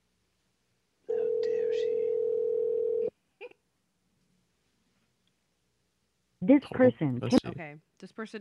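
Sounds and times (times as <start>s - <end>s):
electronic ringback tone of an unanswered phone call: 1.2s - 3.1s
speech: 6.5s - 8.3s.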